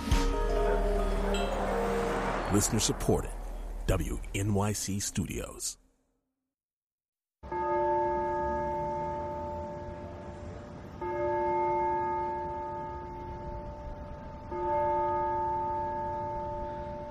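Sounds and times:
deep church bell tolling: 0:00.2 - 0:04.3, 0:07.5 - 0:17.0
speech: 0:02.5 - 0:05.8.

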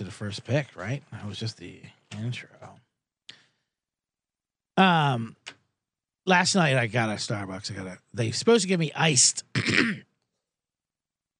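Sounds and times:
speech: 0:00.1 - 0:02.6, 0:04.8 - 0:05.5, 0:06.3 - 0:10.1
person coughing: 0:09.5 - 0:10.2.

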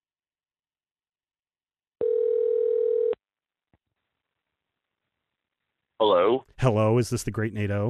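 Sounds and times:
outgoing phone call electronic ring tone: 0:02.0 - 0:03.2
speech: 0:06.0 - 0:07.8.

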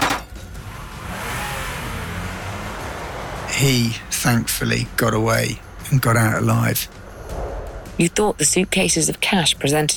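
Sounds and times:
car engine revving and accelerating: 0:00.4 - 0:05.8
speech: 0:03.6 - 0:07.0, 0:08.0 - 0:09.9.

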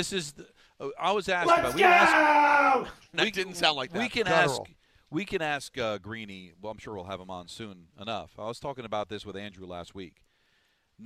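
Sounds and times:
speech: 0:00.0 - 0:10.3
man yelling excitedly: 0:01.4 - 0:03.0, 0:04.0 - 0:04.6.

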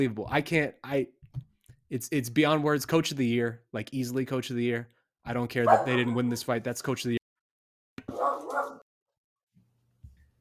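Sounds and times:
speech: 0:00.0 - 0:07.2
dog barking excitedly: 0:05.6 - 0:06.4, 0:08.1 - 0:08.8
dog softer lower yips and whines: 0:08.1 - 0:08.8.

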